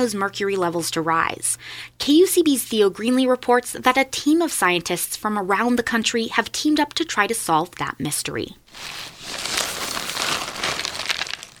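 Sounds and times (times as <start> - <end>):
speech: 0.0 - 9.4
small plastic bags of animal bones crinkling as they are sorted on a table: 8.7 - 11.5.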